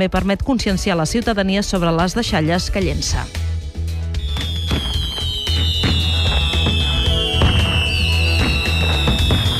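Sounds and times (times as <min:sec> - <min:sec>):
speech: 0:00.0 - 0:03.5
fireworks exploding: 0:04.2 - 0:09.5.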